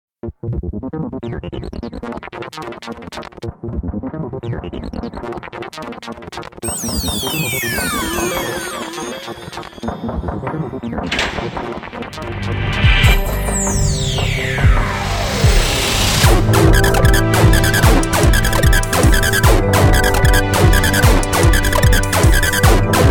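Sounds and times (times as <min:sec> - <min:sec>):
deep trance saw synth: 0:06.6 - 0:23.0.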